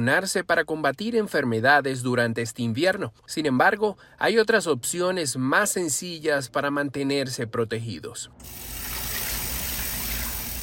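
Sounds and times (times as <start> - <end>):
speech: 0.0 - 8.9
tap water running while washing hands: 8.4 - 10.6.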